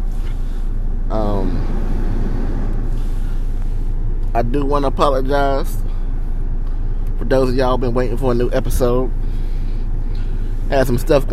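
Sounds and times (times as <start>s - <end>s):
brief rising mechanical whine: 0.0s - 4.4s
moving car cabin rumble with road and engine hum: 0.0s - 11.3s
speech: 4.4s - 5.8s, 7.3s - 9.2s, 10.7s - 11.3s.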